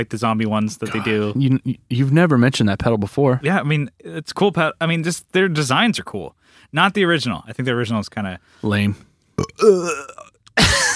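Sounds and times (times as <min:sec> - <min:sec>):
speech: 0:00.0 - 0:10.9
drawn-out voiced burp: 0:09.4 - 0:10.6.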